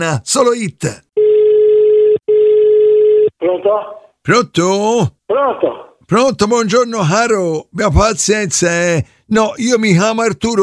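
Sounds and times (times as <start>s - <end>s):
speech: 0.0s - 1.1s, 3.4s - 10.6s
telephone call tone on a radio phone-in: 1.2s - 3.4s.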